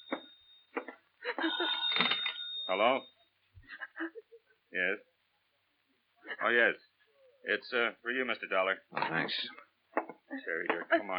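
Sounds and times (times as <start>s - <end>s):
telephone ringing: 0.0s - 3.2s
speech: 2.7s - 3.2s, 4.0s - 5.1s, 6.4s - 6.9s, 7.5s - 9.6s, 10.3s - 11.1s.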